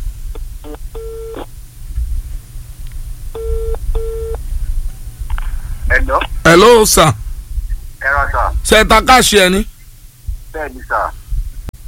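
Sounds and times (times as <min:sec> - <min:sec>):
constant low noise: 0:00.0 - 0:11.8
ringback tone of an outgoing telephone call: 0:00.7 - 0:01.4, 0:03.4 - 0:04.4
speech: 0:06.6 - 0:07.2, 0:08.3 - 0:09.7, 0:10.6 - 0:11.2.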